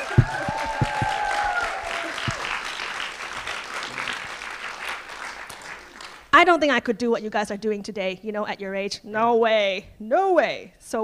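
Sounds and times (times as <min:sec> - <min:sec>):
whoops and cheers from audience: 0:00.0 - 0:02.6
audience applauding students about to share pieces on stage: 0:00.0 - 0:06.3
speech: 0:06.4 - 0:11.0.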